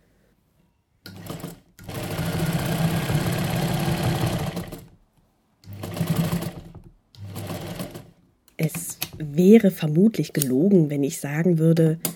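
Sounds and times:
sewing machine running: 1.1 - 5.0, 5.6 - 8.2
speech: 8.6 - 12.1.

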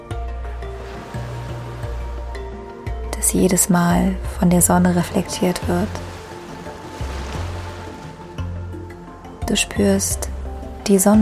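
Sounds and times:
sustained gentle musical tones: 0.0 - 11.2
ocean waves rushing onto a beach: 0.7 - 2.7, 5.2 - 8.5
speech: 3.2 - 6.1, 9.5 - 10.3, 10.9 - 11.2.

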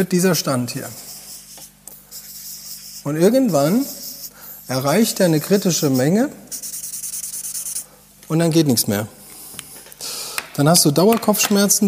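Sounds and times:
speech: 0.0 - 1.1, 3.0 - 4.0, 4.7 - 6.7, 8.3 - 9.2, 10.6 - 11.8
pen scribbling on paper: 1.0 - 7.8.

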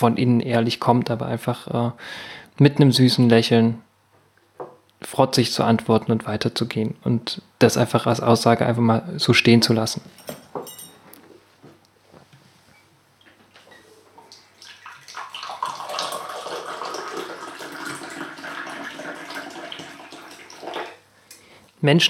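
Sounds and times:
speech: 0.0 - 3.8, 5.0 - 10.8, 21.8 - 22.0
ginger tea poured from a teapot into a cup: 14.5 - 21.0.

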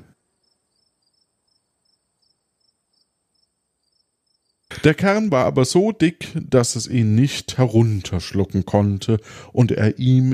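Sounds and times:
crickets chirping in a high-pitched trill: 0.2 - 4.7
speech: 4.8 - 10.3.

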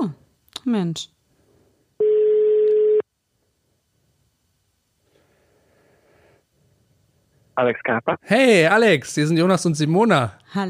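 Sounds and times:
speech: 0.0 - 1.2, 7.6 - 10.6
telephone ringback tone while calling a home in Cologne: 2.0 - 3.0.

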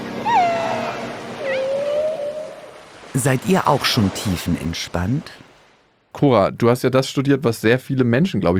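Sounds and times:
whale and dolphin tonal whistles under water: 0.0 - 2.8
speech: 3.2 - 5.4, 6.2 - 8.5.

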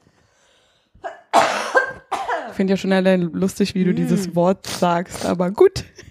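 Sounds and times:
person coughing: 1.0 - 2.6
speech: 2.6 - 6.0.

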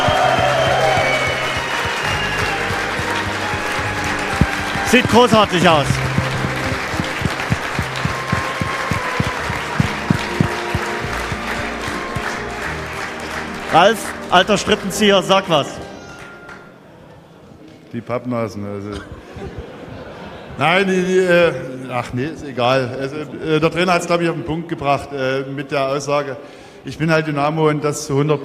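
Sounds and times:
large audience applauding and cheering: 0.0 - 15.5
speech: 4.9 - 6.0, 13.7 - 15.8, 18.0 - 19.8, 20.6 - 28.4.

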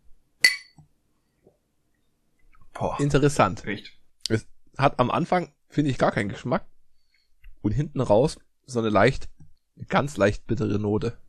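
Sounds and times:
beer glasses clinking in a toast: 0.4 - 0.8
speech: 2.8 - 6.7, 7.6 - 11.2.

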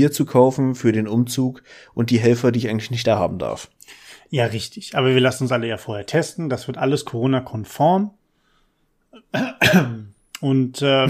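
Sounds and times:
speech: 0.0 - 8.2, 9.2 - 11.0
harsh coughs: 9.2 - 10.1.

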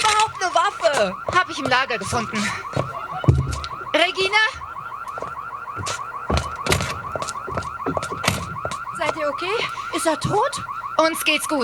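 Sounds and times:
warbling electronic police alarm: 0.0 - 11.6
thumps and knocks: 0.9 - 3.8, 5.2 - 9.2
speech: 1.0 - 3.4, 4.0 - 4.7, 9.2 - 11.6.

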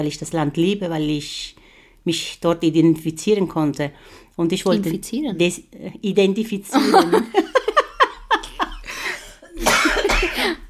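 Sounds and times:
speech: 0.0 - 7.7
laughter: 6.8 - 9.0
woman coughing: 9.1 - 10.6.

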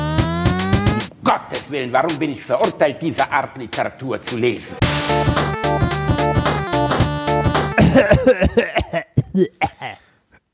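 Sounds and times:
short burst of music: 0.0 - 8.2
speech: 1.7 - 5.6, 8.0 - 10.0
person with asthma coughing wheezily: 7.8 - 10.2.

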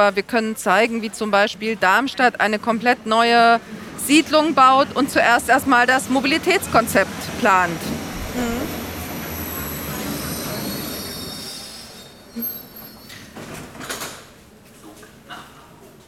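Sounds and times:
speech: 0.0 - 8.7
underground train rumble: 0.8 - 12.9
underground train wheels squealing: 9.0 - 13.6.

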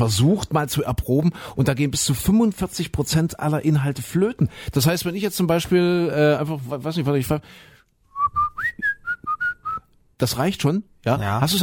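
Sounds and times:
speech: 0.0 - 8.4, 10.2 - 11.6
person whistling a short song melody: 8.1 - 9.9.

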